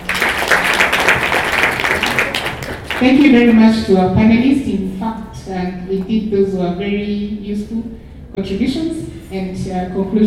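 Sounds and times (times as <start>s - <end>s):
audience applause at the close of a panel meeting: 0.0s - 3.1s
speech: 3.0s - 10.2s.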